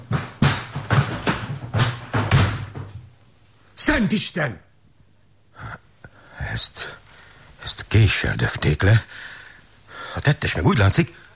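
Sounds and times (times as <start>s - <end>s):
door being battered open with heavy blows: 0.0s - 3.0s
speech: 4.0s - 4.7s, 6.6s - 7.0s, 7.6s - 9.4s, 10.2s - 11.2s.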